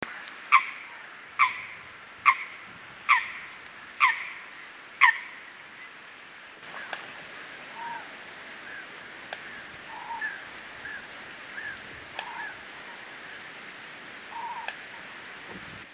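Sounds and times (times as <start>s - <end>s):
Fulica atra calling: 0.5s - 5.5s, 7.7s - 13.1s, 14.3s - 15.1s.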